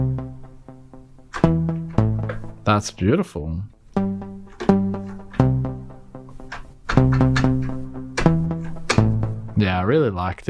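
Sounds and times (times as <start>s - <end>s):
piano run of single notes and struck chords with underwater effect: 0.0s - 3.1s, 4.0s - 9.7s
speech: 2.7s - 3.8s, 9.9s - 10.4s.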